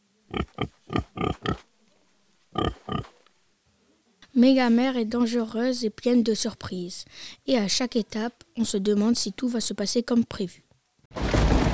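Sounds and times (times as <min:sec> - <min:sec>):
pigs grunting and oinking: 0:00.3 - 0:01.7, 0:02.5 - 0:03.2
speech: 0:04.4 - 0:10.7.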